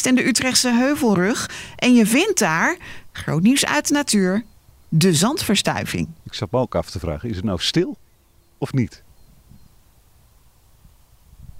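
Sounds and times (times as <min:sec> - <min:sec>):
speech: 0:00.0 - 0:08.0, 0:08.6 - 0:09.0
distant motorway traffic: 0:00.0 - 0:11.1
soft bird calls: 0:02.2 - 0:11.0.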